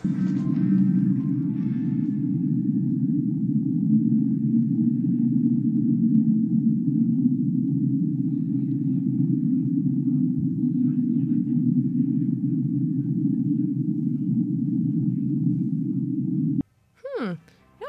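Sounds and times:
steady low drone in underwater hydrophone recording: 0.0 - 16.6.

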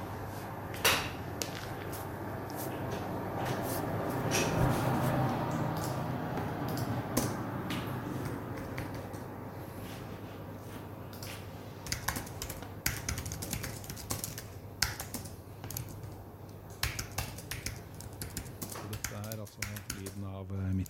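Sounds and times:
constant office air-conditioning hiss and low hum: 0.0 - 20.8
scattered keyboard typing clicks in an office: 5.5 - 9.2, 11.8 - 20.8.

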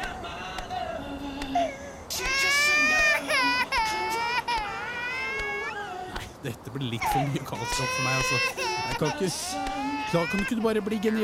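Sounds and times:
baby wailing in long high-pitched bursts: 1.6 - 6.1, 6.9 - 11.2
speech: 6.5 - 11.2.

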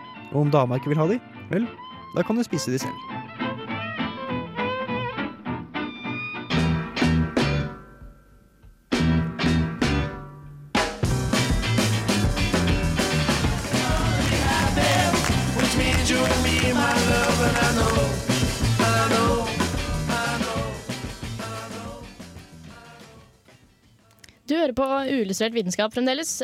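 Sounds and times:
speech: 0.3 - 3.3, 24.8 - 26.4
1960s rock song with guitars, bass and drums played on radio: 3.0 - 8.1, 9.0 - 23.2.

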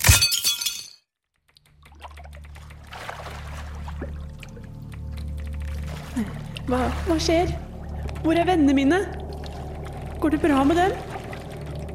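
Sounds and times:
crystal smashing with glassy shatter and tinkling debris: 0.0 - 1.1
low steady rumbling drone: 2.4 - 11.9
speech: 6.2 - 7.6, 8.2 - 9.2, 10.2 - 11.1.

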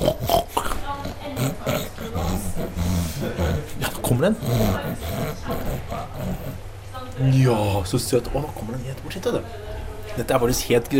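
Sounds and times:
large group of pigs grunting and snorting in a pen: 0.0 - 6.7
speech: 4.2 - 4.9, 7.2 - 10.9.

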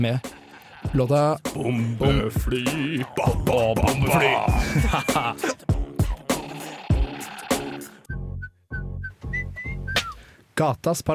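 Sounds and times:
speech: 0.0 - 5.7, 10.6 - 11.1
hip-hop beat with deep bass: 0.2 - 10.2
laughter: 3.8 - 5.7
whistled melody: 8.0 - 10.2.

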